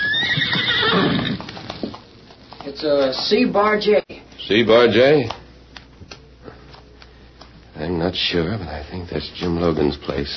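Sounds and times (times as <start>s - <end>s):
pony neighing: 0.0s - 1.5s
speech: 2.8s - 5.4s, 8.1s - 10.3s.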